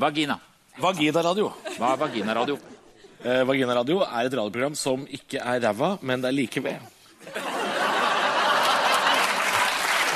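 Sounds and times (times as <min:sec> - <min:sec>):
speech: 0:00.0 - 0:07.4
laughter: 0:01.5 - 0:03.4, 0:07.2 - 0:10.0
small group clapping: 0:08.5 - 0:10.1.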